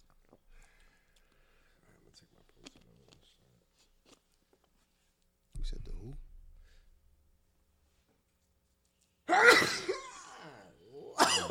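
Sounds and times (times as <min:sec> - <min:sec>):
person sneezing: 0:09.3 - 0:11.4.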